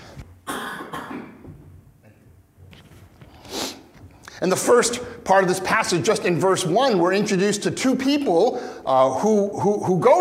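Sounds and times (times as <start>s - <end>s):
person coughing: 0.5s - 1.5s
speech: 4.4s - 10.1s.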